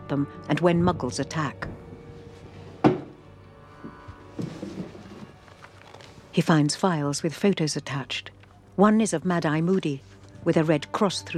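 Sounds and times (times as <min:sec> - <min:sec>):
speech: 0:00.1 - 0:01.7, 0:06.4 - 0:11.3
rummaging, sliding and knocking in desk drawers being searched: 0:04.0 - 0:06.3
wooden desk drawer pulled open with a sharp thunk: 0:04.4 - 0:05.4.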